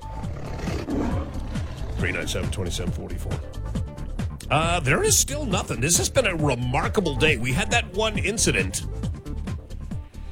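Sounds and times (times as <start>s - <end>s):
lion roaring: 0.0s - 3.7s
speech: 2.0s - 3.8s, 4.5s - 9.1s.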